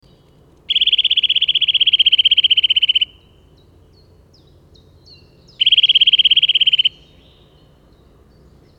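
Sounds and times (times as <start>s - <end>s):
Eurasian nuthatch Sitta europaea trill: 0.7s - 3.4s, 4.4s - 7.7s.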